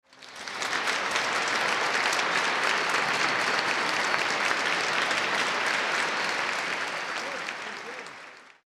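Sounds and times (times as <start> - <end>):
applause in a concert hall: 0.0 - 8.6.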